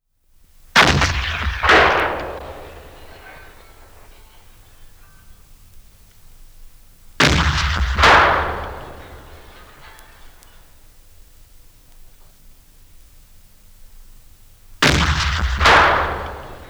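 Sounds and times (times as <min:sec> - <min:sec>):
bronze cannon: 0:00.8 - 0:05.4, 0:07.2 - 0:10.8, 0:14.8 - 0:16.6.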